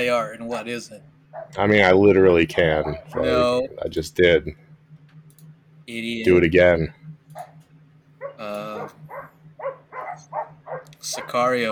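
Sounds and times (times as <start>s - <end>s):
speech: 0.0s - 4.7s, 5.9s - 7.5s, 11.0s - 11.6s
low steady hum: 0.0s - 11.6s
neighbor's dogs barking: 1.3s - 1.6s, 2.7s - 3.5s, 8.2s - 11.6s.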